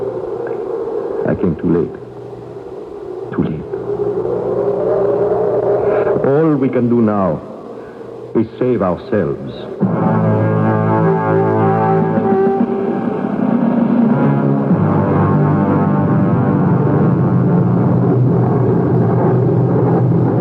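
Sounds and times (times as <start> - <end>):
Morin propeller fighter plane engine droning in flight: 0.0 - 20.4
speech: 1.3 - 2.0, 3.3 - 4.4, 6.3 - 7.5, 8.4 - 10.4.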